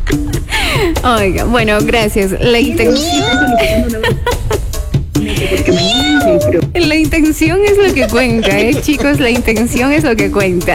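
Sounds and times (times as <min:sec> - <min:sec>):
speech: 0:00.1 - 0:04.4, 0:05.4 - 0:10.7
laughter: 0:02.4 - 0:06.7, 0:07.6 - 0:10.0
cat meowing: 0:02.6 - 0:03.9, 0:05.4 - 0:07.0, 0:07.8 - 0:09.0.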